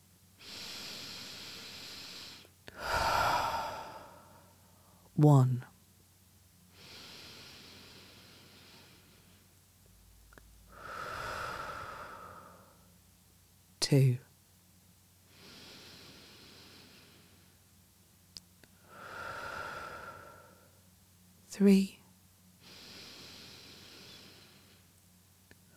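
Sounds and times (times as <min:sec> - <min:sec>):
deep breathing: 0:00.4 - 0:05.1, 0:06.7 - 0:09.5, 0:10.7 - 0:12.9, 0:15.3 - 0:17.6, 0:18.8 - 0:20.8, 0:22.6 - 0:24.9
speech: 0:05.2 - 0:05.7, 0:13.9 - 0:14.2, 0:21.6 - 0:22.0.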